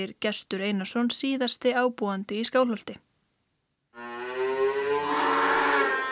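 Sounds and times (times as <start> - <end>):
speech: 0.0 - 3.1
dairy cow mooing at the Skálholt farm: 4.0 - 6.1.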